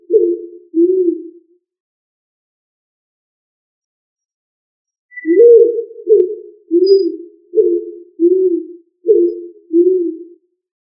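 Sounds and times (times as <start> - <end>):
Columbidae pigeon cooing: 0.0 - 1.4, 5.2 - 10.4.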